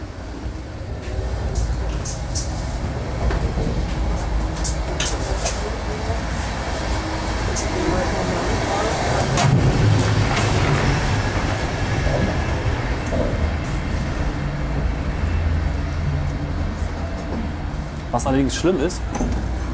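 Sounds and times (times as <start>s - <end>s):
train wheels clattering on rails heard from inside a moving carriage: 0.9s - 18.2s
continuous low-frequency roar of a moving train: 7.7s - 16.7s
speech: 18.2s - 19.4s.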